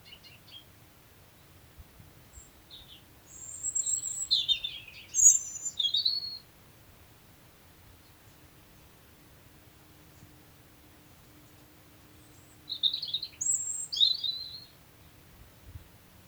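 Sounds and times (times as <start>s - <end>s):
European robin singing: 2.3s - 6.5s, 12.2s - 15.1s.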